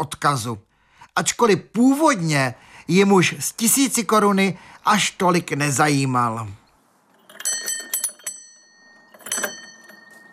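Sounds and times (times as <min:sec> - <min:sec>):
speech: 0:00.0 - 0:06.6
electric doorbell ringing: 0:07.4 - 0:10.3.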